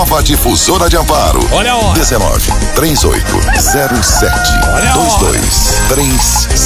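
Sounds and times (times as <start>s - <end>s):
busy bed of music and voices: 0.0s - 6.6s
speech: 0.2s - 6.6s
rooster crowing and clucking in a radio time-signal jingle: 3.4s - 5.2s.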